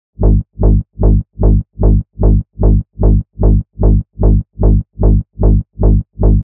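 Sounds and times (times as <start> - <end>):
reversed bass loop in G sharp: 0.2 - 6.4.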